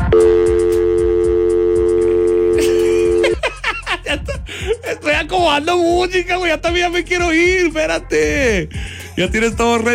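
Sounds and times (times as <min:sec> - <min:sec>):
telephone busy signal tone: 0:00.1 - 0:03.3
speech: 0:05.3 - 0:09.9.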